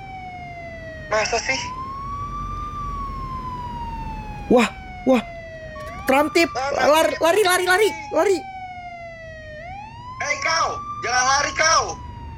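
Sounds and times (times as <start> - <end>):
enforcement patrol vehicle siren wailing: 0.0 - 12.3
speech: 1.1 - 1.8, 4.5 - 5.3, 6.1 - 8.5, 10.7 - 12.0
person exclaiming: 4.5 - 5.2, 6.1 - 8.4.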